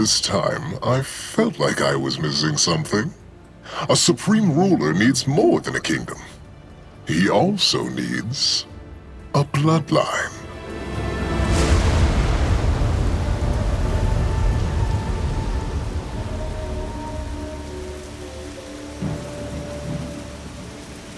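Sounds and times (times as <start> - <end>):
speech: 0.0 - 6.4, 7.1 - 8.7, 9.3 - 10.4
rain falling during a rainstorm in a forest by a river: 0.0 - 21.1
thunder rumbling: 10.5 - 21.1.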